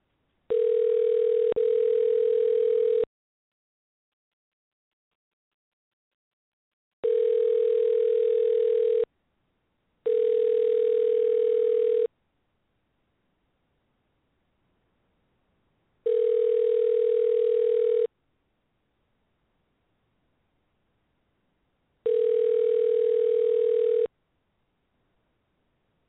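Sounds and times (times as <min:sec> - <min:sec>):
outgoing phone call ringback tone: 0:00.5 - 0:03.1, 0:07.0 - 0:09.1, 0:10.1 - 0:12.1, 0:16.1 - 0:18.1, 0:22.1 - 0:24.1.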